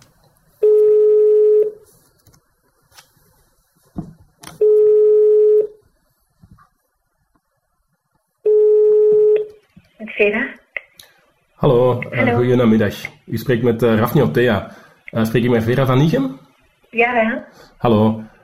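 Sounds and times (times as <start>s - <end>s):
telephone ringback tone: 0.6s - 1.8s, 4.6s - 5.8s, 8.5s - 9.5s
speech: 10.2s - 10.5s, 11.6s - 18.3s.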